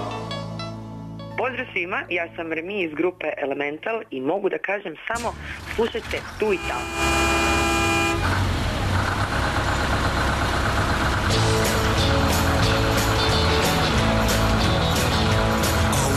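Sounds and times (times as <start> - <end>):
speech: 1.4 - 7.5
bus engine rumbling and idling: 5.2 - 16.1
bus horn toot: 6.4 - 8.4.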